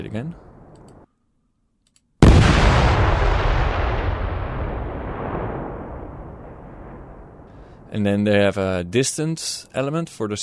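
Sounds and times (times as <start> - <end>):
speech: 0.0 - 0.4, 7.9 - 10.4
heavy explosion of ANFO with a Eurodyn dynamite blow charge: 2.2 - 7.9.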